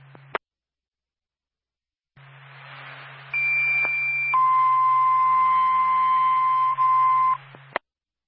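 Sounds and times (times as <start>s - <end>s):
low hum: 2.2s - 7.8s
radio static: 2.2s - 7.8s
two-tone fire department dispatch page over radio: 3.4s - 7.4s.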